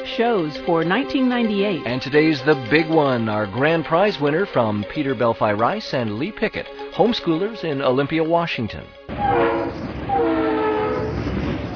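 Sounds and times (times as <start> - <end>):
speech: 0.1 - 9.4
train moving swiftly past with a steady rumble: 8.8 - 11.7
train horn-like tone dropping in pitch: 9.1 - 11.3.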